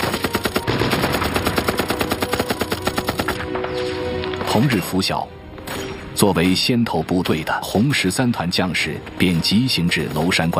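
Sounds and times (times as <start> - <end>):
machine gun fire in a military attack on a mountain pass: 0.0 - 3.5
speech: 4.6 - 5.4, 6.2 - 10.5.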